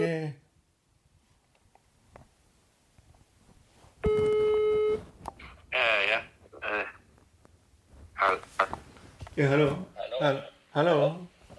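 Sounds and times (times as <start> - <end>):
quiet rustling: 2.9 - 5.5, 6.4 - 10.0
single steady electronic telephone ringing tone: 4.0 - 5.0
speech: 9.4 - 11.3.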